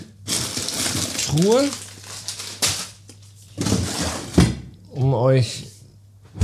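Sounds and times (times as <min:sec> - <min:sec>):
crinkling plastic packaging in a chest freezer: 0:00.0 - 0:03.5
frozen items shuffling in a chest freezer: 0:00.0 - 0:04.6
speech: 0:01.3 - 0:01.8, 0:05.0 - 0:05.7.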